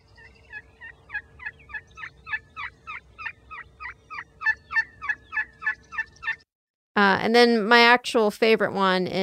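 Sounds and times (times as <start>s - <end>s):
turkey assembly call yelping: 0.2s - 6.4s
speech: 7.0s - 9.2s.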